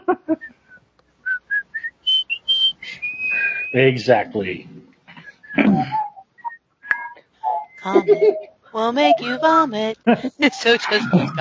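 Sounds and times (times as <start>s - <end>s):
laughter: 0.0s - 0.5s, 3.8s - 6.2s, 7.4s - 11.3s
speech: 0.3s - 0.5s, 3.7s - 4.7s, 7.9s - 11.3s
person whistling a song: 1.2s - 3.8s, 5.4s - 8.4s.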